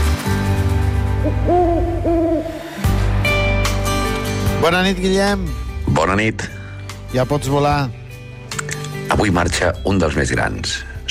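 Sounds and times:
steady musical backing: 0.0 - 11.1
owl hooting: 1.2 - 2.6
speech: 4.6 - 8.0, 9.2 - 11.1.

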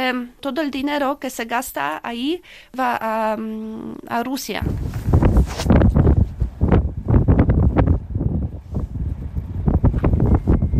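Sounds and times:
speech: 0.1 - 5.6
strong Arctic wind in Svalbard buffeting the microphone: 4.6 - 10.7.

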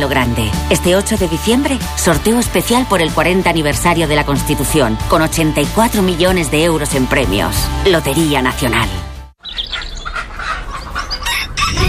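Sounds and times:
speech: 0.0 - 9.7
hens clucking: 9.6 - 11.8
Penedès rooster crowing: 10.5 - 11.8.

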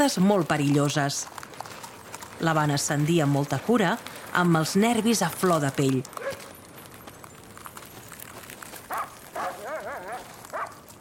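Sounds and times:
speech: 0.0 - 1.5, 2.4 - 6.4
sled dogs pulling a sled barking: 4.0 - 10.9
sled dog yelping: 6.2 - 6.5, 8.9 - 10.9.

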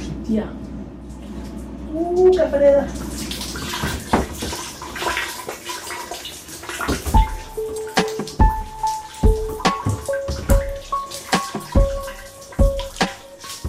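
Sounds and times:
speech: 0.3 - 0.7, 1.9 - 3.1
shower water trickling and dripping into a metal pot: 5.3 - 13.6.

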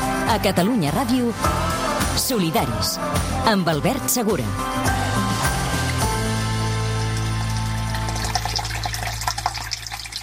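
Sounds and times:
speech: 0.3 - 5.3
running water pouring from a spring fountain spout: 5.7 - 10.2.

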